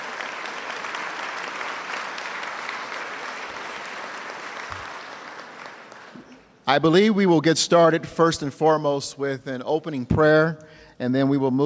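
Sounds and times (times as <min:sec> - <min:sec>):
audience applause at an evening event: 0:00.0 - 0:06.5
speech: 0:06.7 - 0:11.6.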